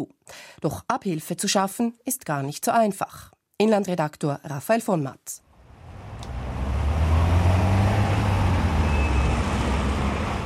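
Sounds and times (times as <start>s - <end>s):
speech: 0.0s - 5.4s
road traffic of passing cars and heavier vehicles: 5.5s - 10.4s.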